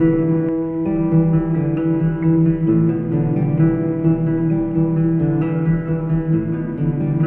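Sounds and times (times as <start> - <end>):
guitar loops: 0.0 - 7.2.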